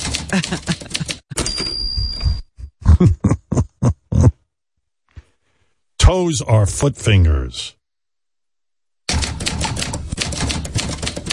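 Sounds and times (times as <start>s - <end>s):
typewriter keys clacking: 0.0s - 1.9s, 9.1s - 11.3s
laughter: 0.2s - 1.4s, 2.8s - 4.4s
speech: 0.3s - 1.1s, 6.1s - 7.8s.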